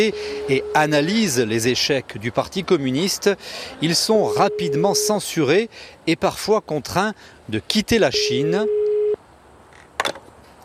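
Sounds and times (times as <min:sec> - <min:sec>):
telephone line electronic beeps: 0:00.0 - 0:01.0, 0:04.2 - 0:05.2
telephone line tone as a call is placed: 0:00.0 - 0:01.0, 0:04.2 - 0:05.2, 0:08.1 - 0:09.2
speech: 0:00.0 - 0:08.8.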